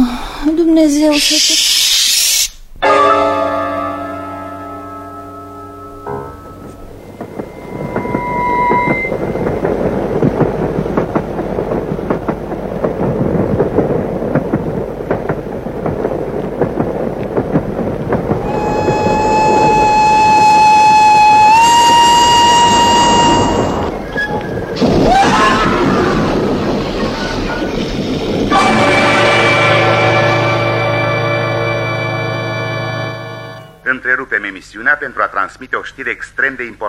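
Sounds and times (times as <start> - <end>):
speech: 0.5 - 1.8, 34.7 - 36.8
train horn: 2.9 - 10.1, 18.4 - 24.9, 28.5 - 33.7
train rumbling on rails: 3.6 - 33.8
heavy crash of trains colliding: 5.7 - 33.8.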